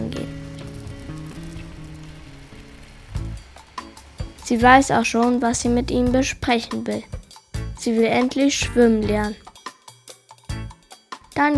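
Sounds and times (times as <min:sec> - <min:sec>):
steady rain falling: 0:00.0 - 0:08.2
speech: 0:04.5 - 0:07.2, 0:07.8 - 0:09.4, 0:11.4 - 0:11.5.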